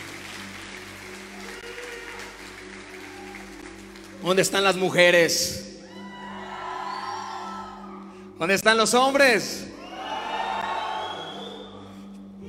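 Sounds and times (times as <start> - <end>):
large crowd cheering and whooping at a church service: 0.0 - 4.0, 5.9 - 7.9, 9.8 - 12.0
church audience applauding loudly: 0.0 - 4.6, 10.0 - 11.6
speech: 4.2 - 5.7, 8.4 - 9.7.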